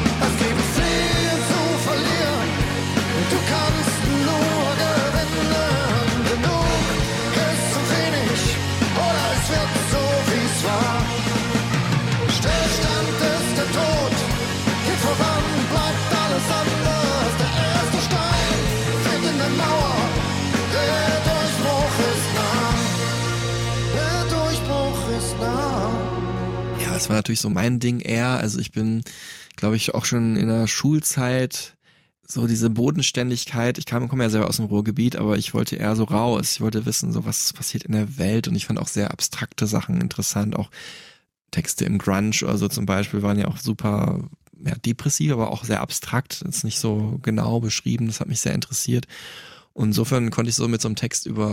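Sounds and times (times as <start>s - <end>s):
rock music with a full band and sung vocal line: 0.0s - 27.2s
speech: 27.3s - 51.5s.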